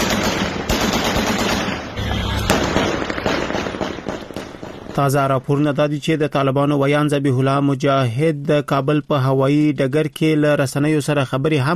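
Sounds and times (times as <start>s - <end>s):
celebratory gunfire across Kabul at night: 0.0s - 5.6s
firecrackers crackling across Kabul at night: 0.0s - 5.9s
speech: 5.0s - 11.7s.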